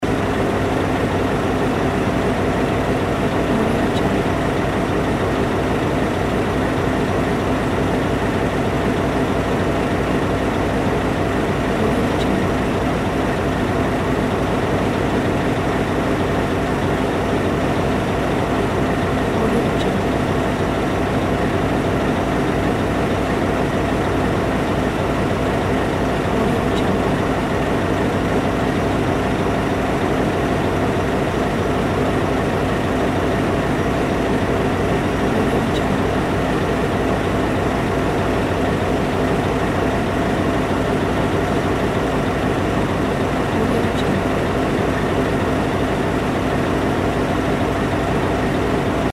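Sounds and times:
locomotive idling: 0.0 - 49.1.

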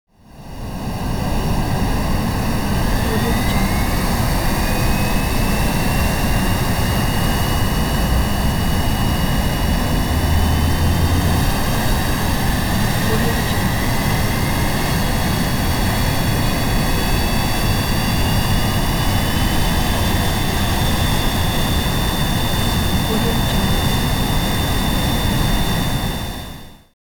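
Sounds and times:
Boeing 787 jet plane turbine revving up: 0.6 - 26.7.

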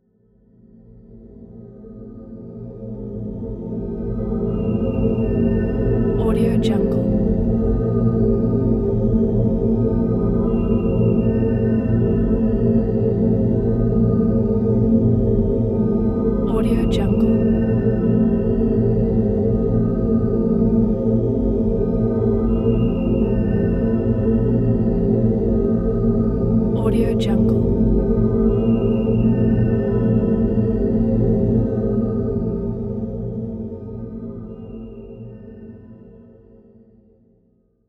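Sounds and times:
dark ambient music: 3.4 - 35.7.

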